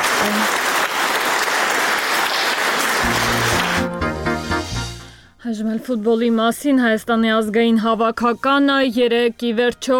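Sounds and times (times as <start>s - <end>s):
audience applause after a speech: 0.0s - 4.1s
speech: 5.5s - 9.9s.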